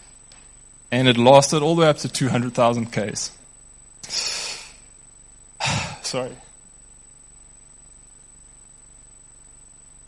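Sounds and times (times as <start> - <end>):
speech: 0.9 - 3.4, 6.1 - 6.5
sharp wet sniffle through the nose while crying: 4.0 - 4.8.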